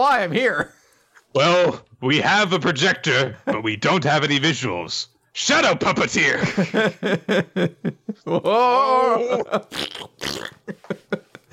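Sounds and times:
speech: 0.0 - 11.5
laughter: 6.3 - 9.9, 10.5 - 11.5
wet squelchy fart-like bursts: 9.7 - 10.7.

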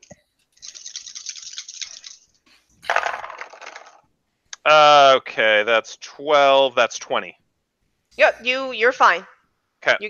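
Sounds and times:
dice rolled on a table for a strength check: 0.0 - 2.2, 2.9 - 4.1
speech: 4.7 - 7.4, 8.2 - 10.0.

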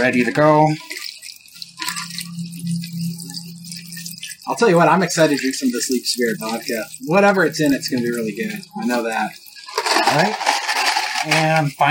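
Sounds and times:
speech: 0.0 - 0.9, 4.5 - 9.4, 10.0 - 10.6, 11.2 - 11.8
cocktail of vodka, orange juice and lemonade poured between glasses at a tailgate: 0.0 - 11.8
steady ringing hum: 0.0 - 11.8.

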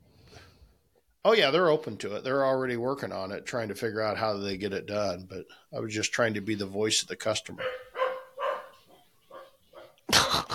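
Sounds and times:
speech: 1.2 - 7.8
dogs barking at a home: 7.6 - 10.4.

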